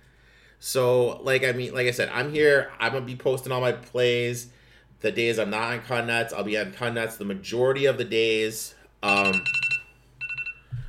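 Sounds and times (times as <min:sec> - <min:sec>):
speech: 0:00.6 - 0:09.6
alarm beeping: 0:09.0 - 0:10.8.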